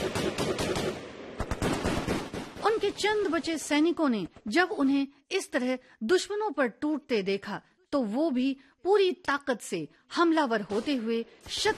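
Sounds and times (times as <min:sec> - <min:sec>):
light machine gun firing bursts in battle: 0:00.0 - 0:03.0
speech: 0:03.0 - 0:11.7.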